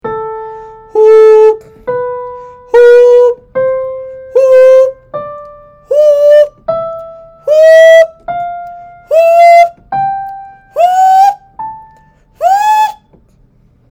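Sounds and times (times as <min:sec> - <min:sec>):
falsetto voice: 0:01.0 - 0:01.6, 0:02.7 - 0:03.4, 0:04.4 - 0:05.0, 0:05.9 - 0:06.5, 0:07.5 - 0:08.2, 0:09.1 - 0:09.8, 0:10.8 - 0:11.4, 0:12.4 - 0:13.0.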